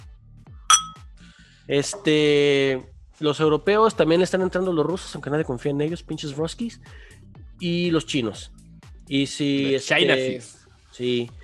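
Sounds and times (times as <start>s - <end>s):
glasses clinking in a tequila toast: 0.7s - 1.0s
speech: 1.7s - 11.4s.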